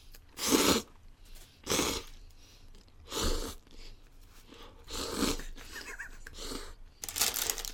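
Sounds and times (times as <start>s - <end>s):
slurping and chewing of instant udon noodles: 0.0s - 5.6s.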